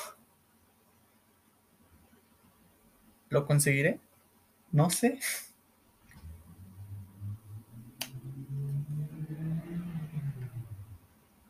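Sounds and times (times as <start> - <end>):
speech: 3.3 - 4.1, 4.7 - 5.5
car engine roaring past at speed: 6.0 - 11.4.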